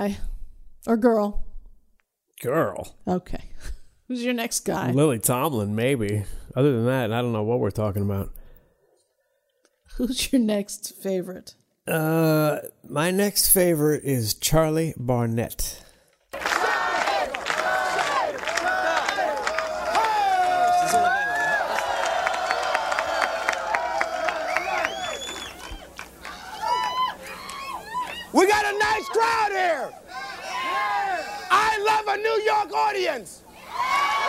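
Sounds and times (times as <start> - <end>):
speech: 0.0 - 1.4, 2.4 - 3.4, 4.1 - 8.4, 10.0 - 16.5
comedy club audience cheering, whooping and shouting in the Village: 16.4 - 34.2.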